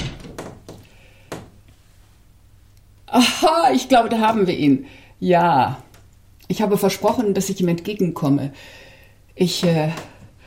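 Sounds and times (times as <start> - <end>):
window being shut with soft wooden knocks and thuds: 0.0 - 1.5
speech: 3.1 - 5.9, 6.5 - 8.8, 9.4 - 10.1.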